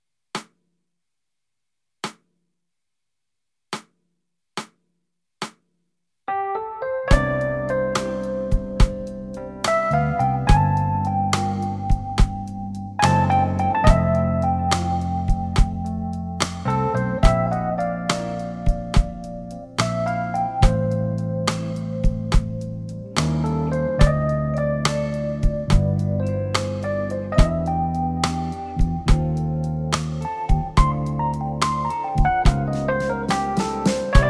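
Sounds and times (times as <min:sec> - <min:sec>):
concert backing track music: 0:07.1 - 0:34.2.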